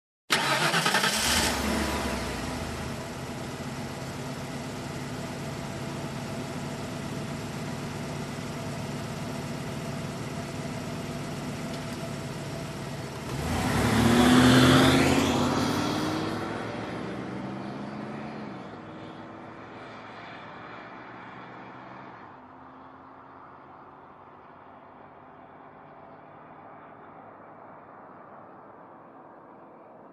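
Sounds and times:
car engine ignition: 0.3 - 18.8
car driving off: 0.3 - 23.2.

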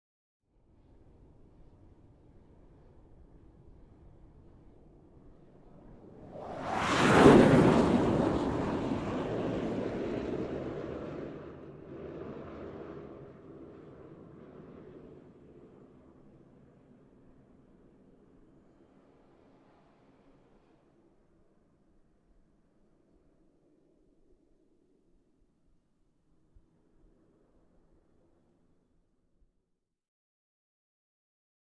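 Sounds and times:
supersonic aircraft whoosh: 5.8 - 15.3.

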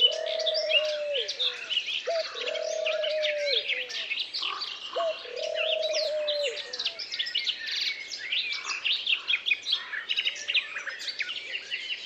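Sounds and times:
low hooting coo: 0.0 - 1.5, 2.1 - 4.1, 5.0 - 6.9
birds chirping and twittering in a forest: 0.0 - 12.0.

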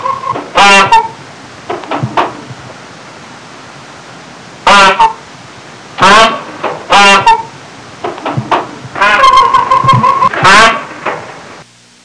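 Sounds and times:
peacock honking: 0.0 - 1.2, 4.6 - 5.2, 6.0 - 11.3.

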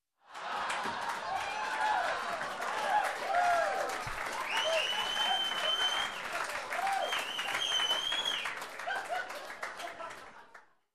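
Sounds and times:
laughter: 0.3 - 1.6, 8.8 - 10.6
audience cheering: 0.3 - 10.2
audience whistling: 4.3 - 8.6.

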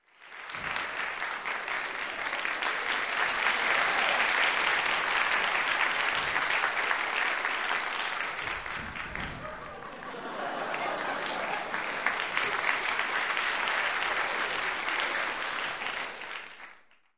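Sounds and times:
warm applause: 0.0 - 17.1
crowd cheering: 0.3 - 16.8
laughter: 1.8 - 8.0, 9.1 - 16.1.

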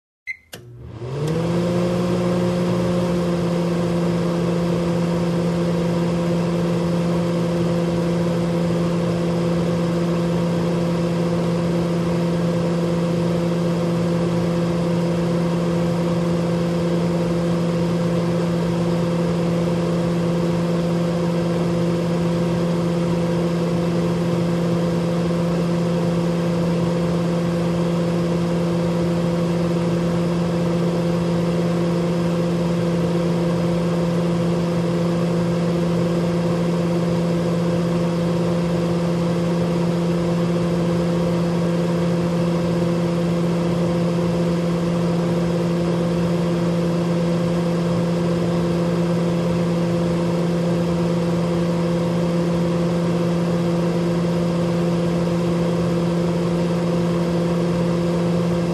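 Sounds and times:
blender turned on: 0.5 - 58.7.

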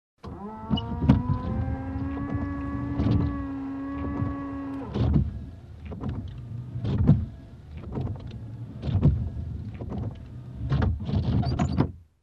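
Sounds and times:
windshield wiper: 0.2 - 12.0.

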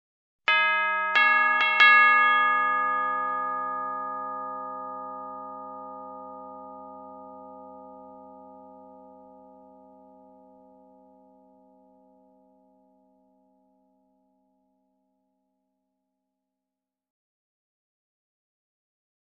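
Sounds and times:
short tubular bell melody: 0.5 - 12.2.

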